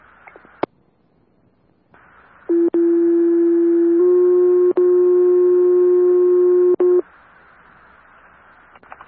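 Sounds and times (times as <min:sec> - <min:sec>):
faint hiss: 0:00.0 - 0:02.5, 0:07.0 - 0:09.0
fire dispatch radio paging tone: 0:02.5 - 0:07.0.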